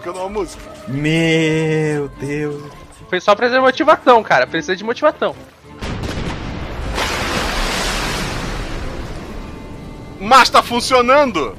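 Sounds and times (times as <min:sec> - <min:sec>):
speech: 0:00.0 - 0:05.5, 0:10.2 - 0:11.5
cannonballs splashing into water around a small boat: 0:02.1 - 0:09.9
cannon fire booms from a ship: 0:05.8 - 0:09.4.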